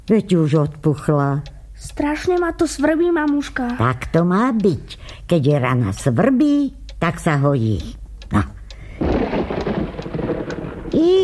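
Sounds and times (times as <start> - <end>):
speech: 0.1 - 8.6, 11.0 - 11.2
dense steady hiss of rain: 8.9 - 11.2
low rumbling thunder: 9.0 - 11.2.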